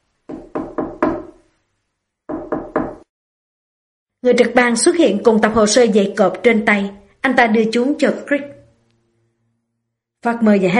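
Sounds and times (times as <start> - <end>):
knocking on a door: 0.3 - 1.4, 2.3 - 3.1
speech: 4.2 - 8.6, 10.2 - 10.7.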